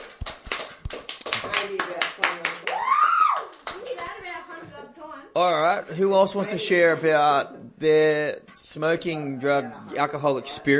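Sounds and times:
audience clapping: 0:00.0 - 0:04.2
person whooping: 0:02.7 - 0:03.5
speech: 0:05.4 - 0:10.7.

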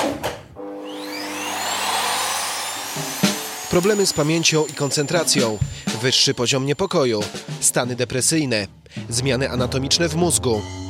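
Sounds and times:
vacuum cleaner sucking air through cotton pad: 0:00.6 - 0:06.4
speech: 0:03.7 - 0:10.8.

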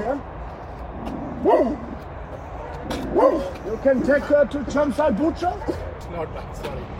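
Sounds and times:
speech: 0:01.4 - 0:01.9, 0:03.2 - 0:06.9
pig giving a dog-like bark: 0:01.4 - 0:02.0, 0:02.6 - 0:03.6.

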